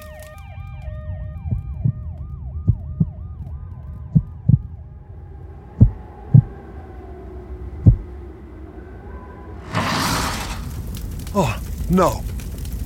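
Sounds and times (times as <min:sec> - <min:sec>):
ambulance siren wailing: 0:00.0 - 0:09.7
rushing noise: 0:05.3 - 0:11.3
speech: 0:11.4 - 0:12.3.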